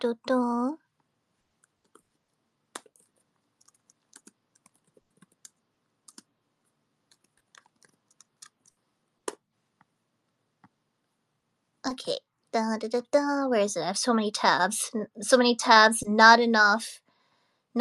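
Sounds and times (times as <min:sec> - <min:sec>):
speech: 0:00.0 - 0:00.8, 0:11.8 - 0:17.0
typing on a computer keyboard: 0:02.8 - 0:06.3, 0:07.1 - 0:08.8.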